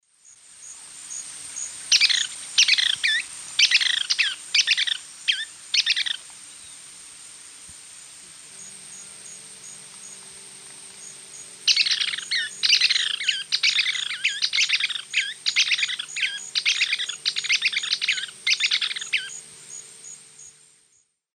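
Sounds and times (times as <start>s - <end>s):
Stigmatura napensis calls in South American eastern lowlands: 1.9s - 6.8s, 11.7s - 19.4s.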